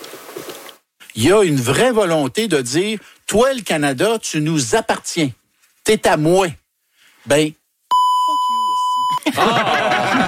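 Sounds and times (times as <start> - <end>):
speech: 1.2 - 6.6, 7.2 - 7.6, 9.2 - 10.2
censor bleep pure tone near 1 kHz: 7.9 - 9.2
laughter: 9.1 - 10.2.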